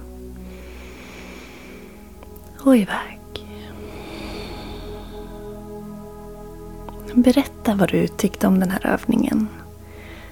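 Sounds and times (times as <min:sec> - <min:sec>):
slow ujjayi inhale during a relaxation breathing exercise: 0:00.4 - 0:02.4, 0:03.3 - 0:06.8, 0:09.7 - 0:10.3
speech: 0:02.6 - 0:03.2, 0:07.1 - 0:09.6.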